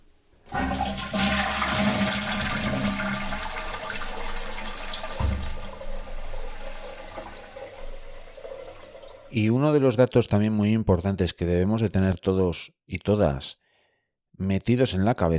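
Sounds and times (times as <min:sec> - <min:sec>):
toilet flushing and refilling: 0:00.5 - 0:09.4
speech: 0:09.4 - 0:13.6, 0:14.4 - 0:15.3.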